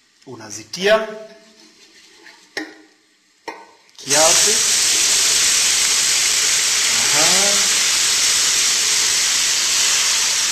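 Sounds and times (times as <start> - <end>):
speech: 0.2 - 1.4, 4.1 - 4.8
water boiling in a pot for cooking ugali: 4.0 - 10.5.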